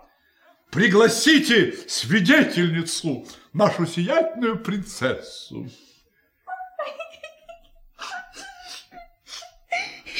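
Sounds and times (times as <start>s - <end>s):
speech: 0.7s - 5.9s
woman sobbing and wailing: 6.5s - 10.1s.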